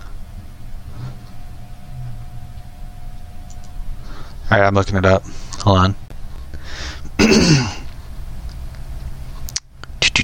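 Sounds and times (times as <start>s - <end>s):
quiet hum: 0.0s - 10.2s
speech: 4.5s - 6.0s, 7.2s - 7.8s
throat clearing: 7.2s - 7.9s.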